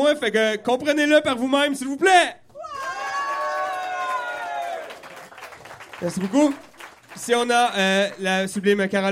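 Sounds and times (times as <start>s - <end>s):
speech: 0.0s - 2.4s, 6.0s - 9.1s
audience cheering loudly with whoops and shouts: 2.6s - 8.3s.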